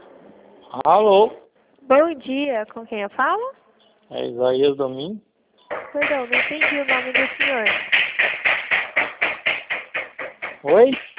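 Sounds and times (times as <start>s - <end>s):
speech: 0.7s - 5.3s, 5.9s - 8.0s, 10.6s - 11.0s
rhythmic knocking from a woodworking shop over a phone line: 5.7s - 11.1s.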